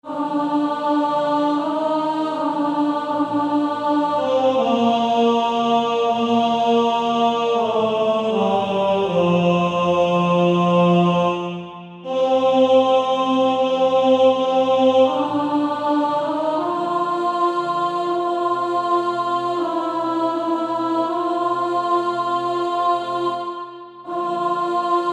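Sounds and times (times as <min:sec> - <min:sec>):
male choir first tenor singing: 0:00.0 - 0:25.1.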